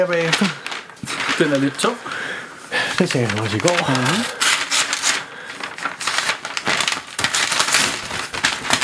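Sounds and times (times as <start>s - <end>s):
speech: 0.0s - 2.4s, 3.0s - 4.4s
gift wrapping paper being torn open and crumpled: 0.0s - 8.8s.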